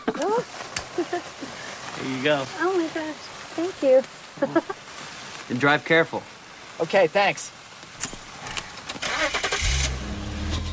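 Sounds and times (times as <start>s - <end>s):
speech: 2.0s - 4.8s, 5.5s - 7.6s
car engine starting: 9.0s - 10.7s.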